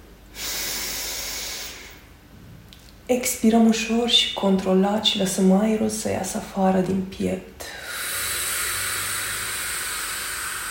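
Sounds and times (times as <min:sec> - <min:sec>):
deep inhale during a guided relaxation breathing exercise: 0:00.3 - 0:02.1, 0:07.6 - 0:10.7
speech: 0:03.1 - 0:07.8.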